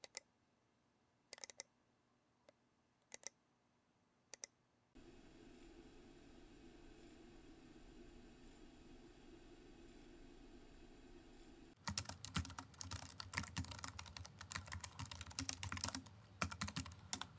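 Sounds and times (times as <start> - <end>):
computer sound: 11.8 - 17.3.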